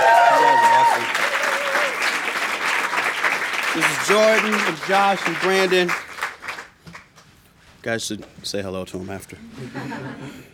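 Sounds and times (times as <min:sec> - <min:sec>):
audience applauding for a live band: 0:00.0 - 0:07.2
speech: 0:03.8 - 0:06.0, 0:07.8 - 0:10.5
laughter: 0:09.4 - 0:10.5.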